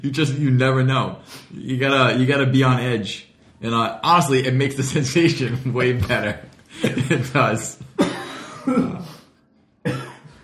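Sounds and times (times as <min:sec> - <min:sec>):
speech: 0:00.0 - 0:08.0, 0:08.7 - 0:09.2, 0:09.8 - 0:10.1
man coughing: 0:07.9 - 0:10.4.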